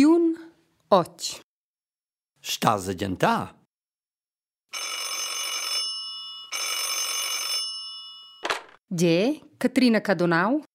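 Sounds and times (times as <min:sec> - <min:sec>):
speech: 0:00.9 - 0:01.4, 0:02.4 - 0:03.6, 0:04.7 - 0:05.0, 0:08.9 - 0:10.7
old-style telephone bell ringing: 0:04.7 - 0:08.8.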